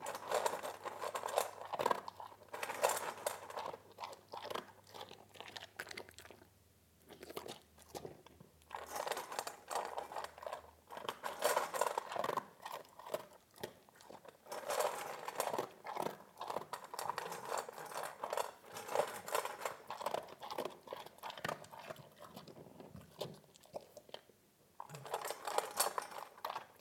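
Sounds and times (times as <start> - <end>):
dog chewing food with crunchy bites: 0.0 - 26.7.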